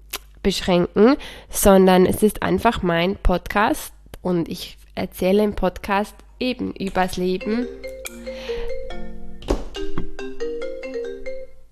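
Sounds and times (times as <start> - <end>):
speech: 0.4 - 8.2
phone ringtone bright stepping electronic melody: 7.4 - 11.7.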